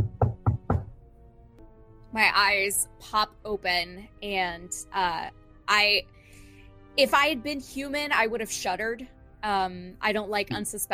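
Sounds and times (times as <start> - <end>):
firm knocks on a wooden front door: 0.0 - 1.0
speech: 2.2 - 6.2, 7.0 - 10.9.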